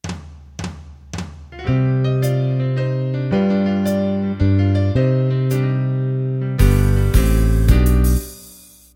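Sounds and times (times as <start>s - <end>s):
country music intro in three-four time: 1.7s - 8.5s.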